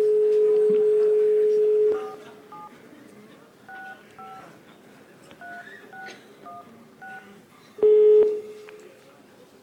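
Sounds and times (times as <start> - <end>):
telephone touch-tone beeps as a number is keyed in: 0.0 - 2.7, 3.7 - 4.4, 5.4 - 8.4
telephone dial tone: 0.2 - 2.7.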